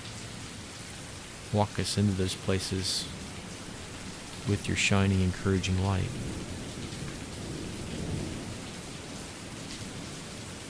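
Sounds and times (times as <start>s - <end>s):
steady dense rain pouring heard from a porch: 0.0s - 10.6s
speech: 1.5s - 3.2s, 4.5s - 6.4s
low rolling thunder heard from a porch: 6.1s - 9.0s.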